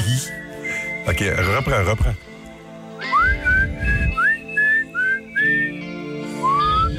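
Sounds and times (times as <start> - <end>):
speech: 0.2 - 2.3
person whistling a short tune with upward-sliding notes: 3.0 - 6.9.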